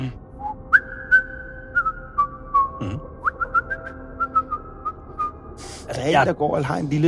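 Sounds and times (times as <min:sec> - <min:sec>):
person whistling a wandering melody: 0:00.4 - 0:05.4
speech: 0:06.0 - 0:07.0.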